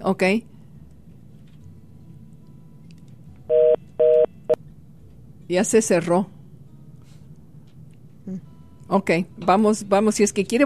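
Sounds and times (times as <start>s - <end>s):
speech: 0.0s - 0.5s, 5.5s - 6.4s, 8.3s - 10.6s
incoming telephone call signal electronic tone bursts: 3.5s - 4.3s.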